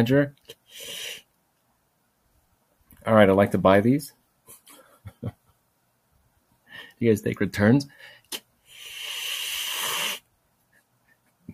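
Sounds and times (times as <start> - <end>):
speech: 0.0 - 1.2, 3.1 - 4.2, 5.2 - 5.4, 7.0 - 8.4
cat hissing: 0.7 - 1.3, 8.7 - 10.2.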